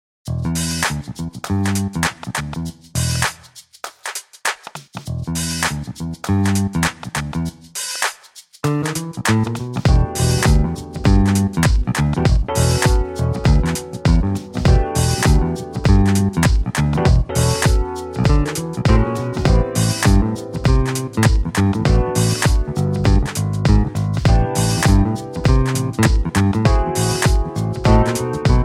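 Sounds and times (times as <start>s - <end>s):
picked bass: 0.3s - 3.5s, 5.0s - 7.8s, 8.6s - 28.6s.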